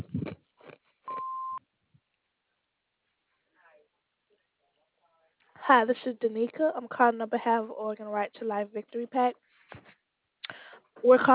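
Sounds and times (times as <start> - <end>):
answering machine beep over a telephone line: 1.1 - 1.6
speech: 5.7 - 9.8, 11.0 - 11.3.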